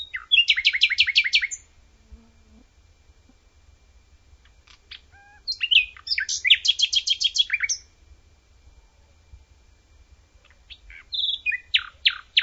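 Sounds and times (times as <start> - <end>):
common nightingale singing outdoors: 0.0 - 1.7, 4.4 - 8.0, 8.7 - 12.4.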